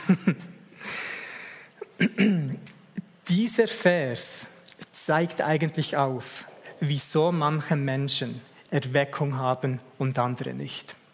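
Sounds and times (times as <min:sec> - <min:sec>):
speech: 0:00.1 - 0:00.5, 0:03.5 - 0:11.0
person coughing: 0:01.8 - 0:02.7.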